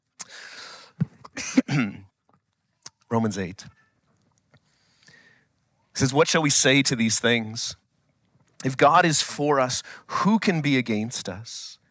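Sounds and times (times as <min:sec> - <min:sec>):
throat clearing close to a microphone: 0:01.1 - 0:02.1
person coughing close to a microphone: 0:01.2 - 0:02.0
speech: 0:01.7 - 0:02.1, 0:03.1 - 0:03.8, 0:06.0 - 0:07.8, 0:08.6 - 0:11.8.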